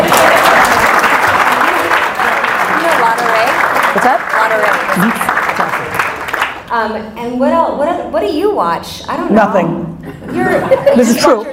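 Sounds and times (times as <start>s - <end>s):
audience applause: 0.0s - 6.7s
speech: 5.0s - 5.3s, 6.8s - 11.5s
laughter: 10.0s - 11.5s.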